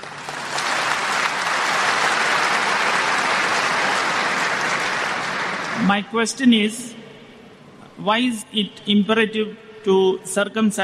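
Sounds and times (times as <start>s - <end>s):
large crowd applauding: 0.0s - 5.9s
speech: 5.9s - 7.0s, 8.0s - 10.8s.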